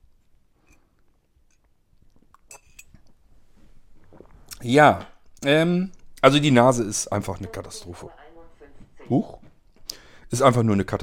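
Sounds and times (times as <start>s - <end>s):
person sipping coffee from a cup: 0.2s - 4.6s
soft swallowing: 2.0s - 5.4s
speech: 4.6s - 8.2s, 9.1s - 9.4s, 10.3s - 11.0s.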